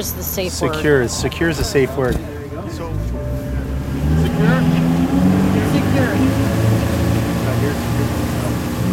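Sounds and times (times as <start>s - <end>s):
speech: 0.0s - 3.2s, 4.4s - 4.8s
powerful motorboat engine on a 24-foot rigid-hull inflatable boat roaring: 0.0s - 8.9s.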